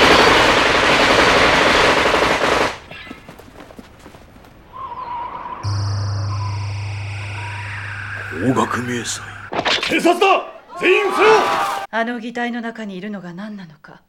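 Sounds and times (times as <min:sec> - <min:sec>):
automatic gunfire shot through a window: 0:00.0 - 0:03.0
steady tones: 0:05.7 - 0:10.9
speech: 0:08.8 - 0:14.0.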